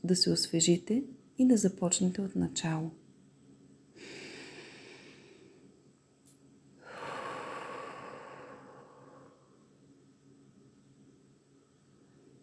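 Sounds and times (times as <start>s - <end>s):
speech: 0.1s - 3.0s
slow deep breaths: 3.9s - 5.8s, 6.8s - 9.8s.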